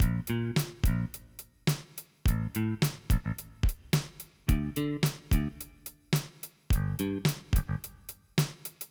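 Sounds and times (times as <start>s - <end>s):
bassline on a Yamaha reface CS: 0.0s - 1.4s, 2.3s - 3.9s, 4.5s - 5.8s, 6.7s - 8.2s.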